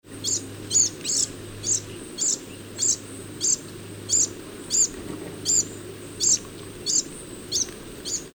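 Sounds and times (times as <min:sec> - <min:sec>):
brown-headed cowbird begging: 0:00.1 - 0:08.3.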